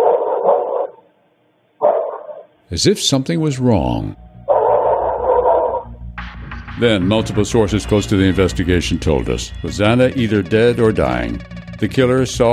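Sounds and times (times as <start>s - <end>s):
dog barking with high yelping tones: 0.0s - 1.0s, 1.8s - 2.5s, 4.5s - 5.9s
speech: 2.7s - 4.3s, 6.8s - 12.5s.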